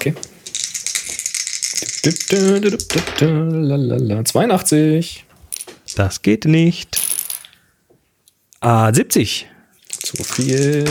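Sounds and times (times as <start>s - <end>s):
speech: 0.0s - 0.4s, 1.8s - 5.3s, 6.0s - 7.1s, 8.6s - 9.5s, 10.1s - 10.9s
dice rattling as they are shaken and rolled: 0.4s - 3.3s, 6.9s - 7.6s, 9.8s - 10.9s.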